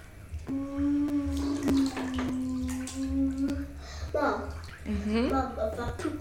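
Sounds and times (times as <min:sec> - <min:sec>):
water sloshing and splashing in a bathtub: 0:00.0 - 0:06.1
child pretending to be a speedboat humming like a motor: 0:00.4 - 0:04.4
speech: 0:05.5 - 0:06.1.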